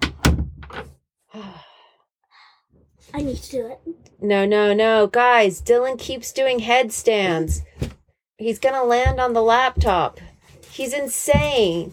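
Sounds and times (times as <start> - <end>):
door swinging shut with solid hollow thuds: 0.0 - 0.9
speech: 3.1 - 7.7, 8.4 - 10.2, 10.8 - 11.9.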